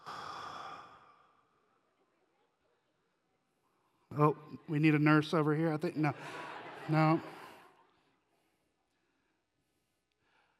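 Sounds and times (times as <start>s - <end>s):
group exhaling after a deep breath together: 0.0s - 1.5s
speech: 4.2s - 7.4s
laughter: 5.9s - 8.0s.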